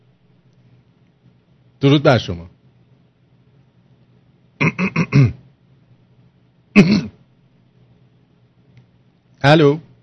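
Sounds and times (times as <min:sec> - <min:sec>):
speech: 0:01.8 - 0:02.5, 0:04.6 - 0:05.4, 0:06.8 - 0:07.1, 0:09.4 - 0:09.9
person clearing throat on a phone line: 0:04.6 - 0:05.4, 0:06.8 - 0:07.2
person coughing on a phone line: 0:04.6 - 0:05.4, 0:06.8 - 0:07.2.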